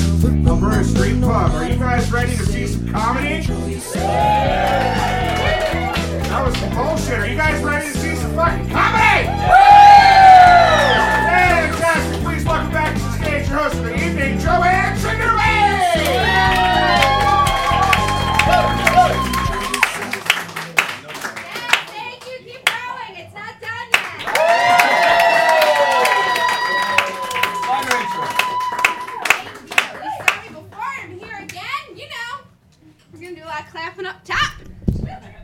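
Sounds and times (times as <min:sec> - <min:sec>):
upbeat music: 0:00.0 - 0:20.0
speech: 0:00.9 - 0:05.4, 0:06.4 - 0:09.8
audience members shouting and whooping: 0:03.8 - 0:06.3, 0:08.9 - 0:11.8, 0:15.4 - 0:19.9, 0:24.2 - 0:29.3
audience clapping and cheering: 0:03.8 - 0:07.4, 0:08.7 - 0:13.5, 0:15.2 - 0:22.9, 0:23.9 - 0:30.8.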